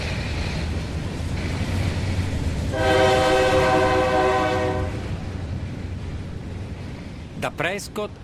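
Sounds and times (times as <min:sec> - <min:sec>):
freight train rumbling past along the Mississippi on the Wisconsin Great River Road: 0:00.0 - 0:08.2
loud sustained multi-tone freight train horn blast: 0:02.7 - 0:05.1
speech: 0:07.6 - 0:08.2.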